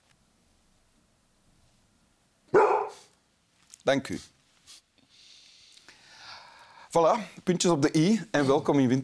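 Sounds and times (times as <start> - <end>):
dog barking: 2.5 - 3.1
speech: 3.9 - 4.8, 6.9 - 9.0.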